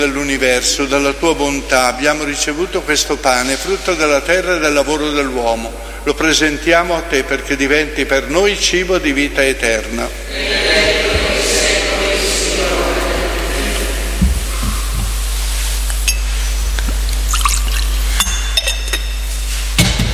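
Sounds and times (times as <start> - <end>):
speech: 0.0 - 11.0
steady hum: 0.0 - 20.1
water poured into wine in a metal chalice during a liturgy: 15.8 - 19.5
light clinks of a metal chalice: 15.9 - 19.5.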